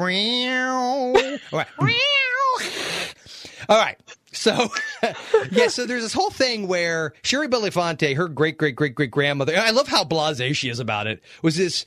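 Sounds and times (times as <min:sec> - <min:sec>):
speech: 0:00.0 - 0:11.8
human voice imitating a cat's meow: 0:01.8 - 0:02.6
laughter: 0:04.5 - 0:05.9.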